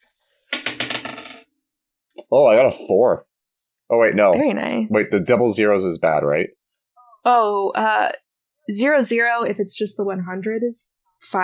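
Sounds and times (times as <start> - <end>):
dice clattering across a hard tabletop: 0.4 - 1.5
speech: 2.3 - 3.3, 3.9 - 6.6, 7.2 - 11.4.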